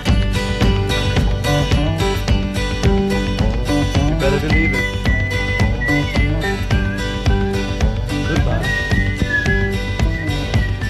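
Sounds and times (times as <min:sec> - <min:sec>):
full band backing with steady drums and bass: 0:00.0 - 0:10.8
whistled melody in a played music recording: 0:04.1 - 0:10.8.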